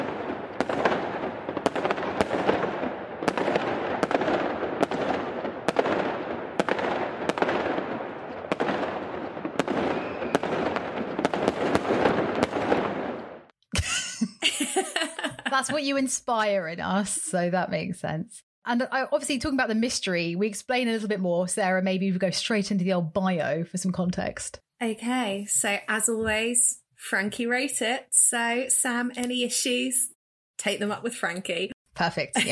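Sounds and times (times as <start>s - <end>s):
fireworks display roaring crackle: 0.0s - 13.5s, 14.4s - 16.0s, 25.1s - 26.7s
sharp loud fireworks bangs: 0.0s - 13.5s, 14.5s - 16.0s
laughter: 13.8s - 15.9s
speech: 15.6s - 32.4s.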